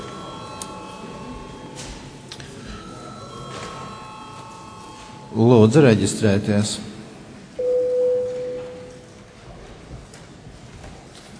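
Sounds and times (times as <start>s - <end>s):
speech: 5.3s - 6.9s
parliament registration bell ringing: 7.6s - 9.0s.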